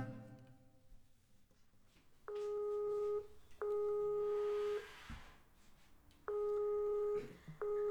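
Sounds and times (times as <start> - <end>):
Skype call ringing tone beeps: 2.3 - 4.8, 6.3 - 7.8.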